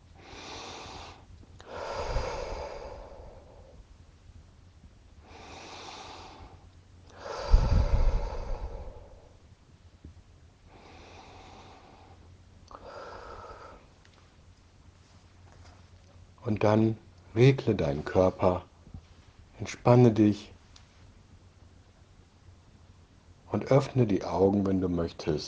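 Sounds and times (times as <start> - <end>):
slow deep breaths: 0.0 - 3.9, 5.2 - 9.5, 10.6 - 14.0
speech: 16.4 - 18.7, 19.6 - 20.5, 23.7 - 25.4.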